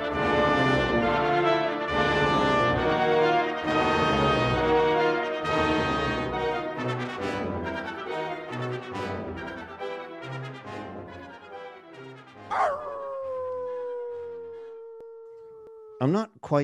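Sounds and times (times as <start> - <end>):
orchestral music: 0.0 - 14.6
husky howling: 12.5 - 16.0
speech: 16.0 - 16.6.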